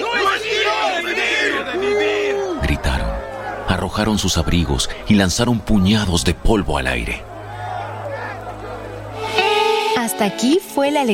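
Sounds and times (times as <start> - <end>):
rising cries: 0.0 - 3.7, 7.2 - 10.2
loud agitated crowd shouting and yelling: 0.0 - 5.0, 7.2 - 10.0
speech: 3.8 - 7.3, 10.2 - 11.1.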